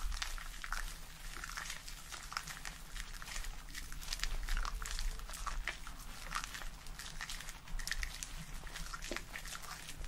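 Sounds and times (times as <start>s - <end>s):
foamy lather crackling and squishing as it is worked into a scalp: 0.0s - 10.0s.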